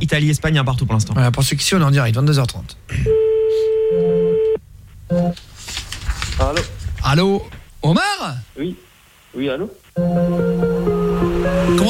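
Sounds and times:
speech: 0:00.0 - 0:03.2, 0:05.1 - 0:05.8, 0:06.4 - 0:11.8
telephone ringback tone for an outgoing call: 0:03.1 - 0:05.4, 0:10.0 - 0:10.8.

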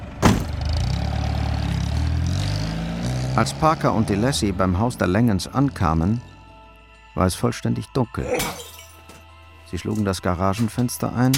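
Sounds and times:
car engine revving as the car drives off: 0:00.5 - 0:05.1
speech: 0:03.4 - 0:06.3, 0:07.2 - 0:08.7, 0:09.7 - 0:11.3.

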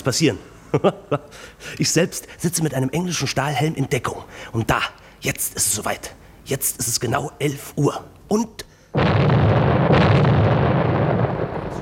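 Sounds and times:
speech: 0:00.0 - 0:09.7
loud explosion at an old railway station building: 0:09.0 - 0:11.8
rumbling debris: 0:09.0 - 0:11.8.

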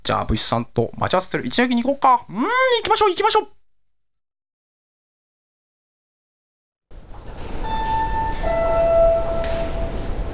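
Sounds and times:
speech: 0:00.1 - 0:03.6
express train passing through a station platform: 0:06.9 - 0:10.3.

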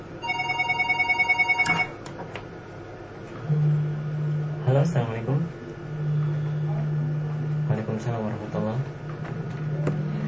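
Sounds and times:
telephone ringing with warbling electronic trill: 0:00.2 - 0:02.0
low hum: 0:03.3 - 0:10.2
speech: 0:04.7 - 0:05.6, 0:07.9 - 0:09.4.

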